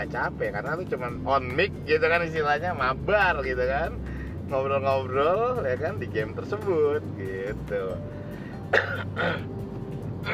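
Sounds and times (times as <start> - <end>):
casual conversation: 0.0 - 8.5
speech: 0.0 - 9.6
person coughing: 8.7 - 9.5.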